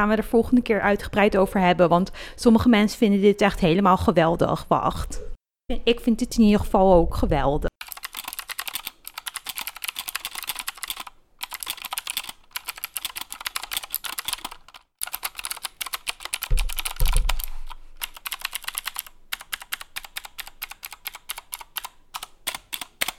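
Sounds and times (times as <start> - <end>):
speech: 0.0 - 7.7
typing on a mechanical keyboard: 7.8 - 23.1
low thump: 16.5 - 17.5.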